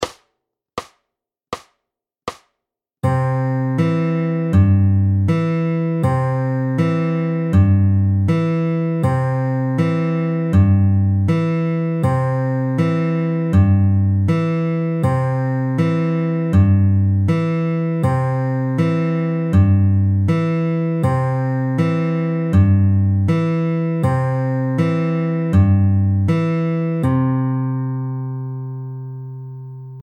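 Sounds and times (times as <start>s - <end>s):
slow Travis picking guitar: 3.4s - 29.9s.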